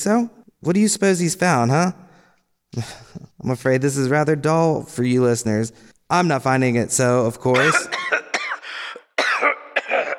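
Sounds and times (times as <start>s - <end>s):
speech: 0.0s - 2.0s, 2.7s - 8.0s
man coughing: 7.5s - 10.1s.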